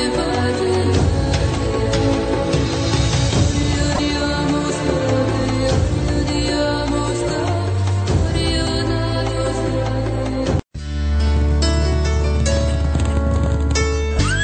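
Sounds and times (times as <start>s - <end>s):
full loud music bed: 0.0s - 14.4s
horse hooves clip-clopping: 11.2s - 14.4s.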